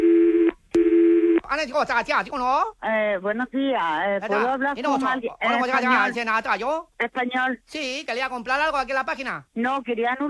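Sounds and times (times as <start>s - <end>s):
telephone ringback tones on a transferred call: 0.0s - 1.4s
speech: 1.5s - 10.2s.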